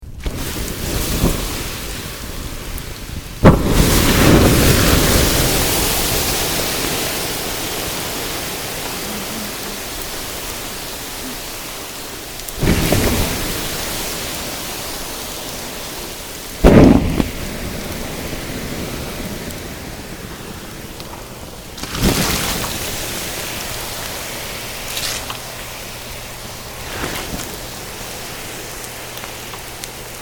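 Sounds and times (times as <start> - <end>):
fire being doused: 0.1 - 30.1.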